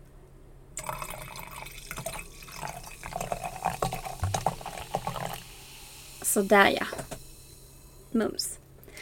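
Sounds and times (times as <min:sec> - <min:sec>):
wine pouring into a glass: 0:00.8 - 0:08.1
speech: 0:06.4 - 0:07.0, 0:08.2 - 0:08.5.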